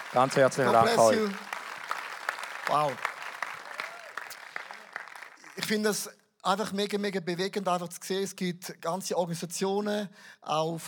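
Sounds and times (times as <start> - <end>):
audience applause: 0.0 - 6.0
speech: 0.1 - 1.5, 2.7 - 3.1, 5.6 - 10.8.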